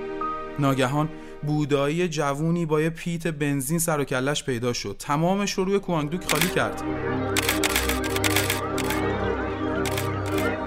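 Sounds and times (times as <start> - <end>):
speech: 0.6 - 7.6
camera shutter clicks: 6.3 - 6.6, 7.4 - 9.0, 9.9 - 10.6.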